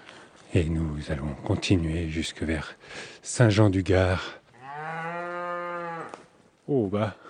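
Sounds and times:
outdoor background: 0:00.0 - 0:07.2
speech: 0:00.5 - 0:04.4, 0:06.7 - 0:07.2
cow mooing: 0:04.6 - 0:06.2.

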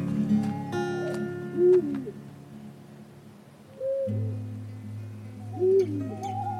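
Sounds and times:
owl hooting at night: 0:00.3 - 0:02.2, 0:03.7 - 0:04.6, 0:05.3 - 0:06.5.

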